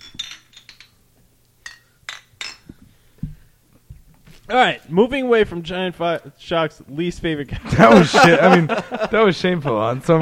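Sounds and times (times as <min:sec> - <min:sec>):
glasses clinking together in a toast: 0:00.0 - 0:01.0, 0:01.6 - 0:02.9
speech: 0:04.5 - 0:10.2
laughter: 0:07.5 - 0:10.2.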